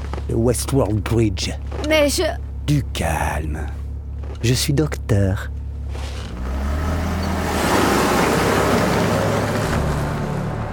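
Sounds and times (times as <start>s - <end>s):
speech: 0.3s - 3.8s, 4.4s - 6.1s
car engine revving and accelerating at night: 2.6s - 10.7s.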